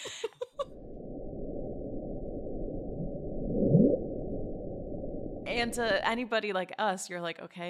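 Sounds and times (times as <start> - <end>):
low-frequency underwater ocean rumble: 0.6 - 6.2
speech: 5.6 - 7.6.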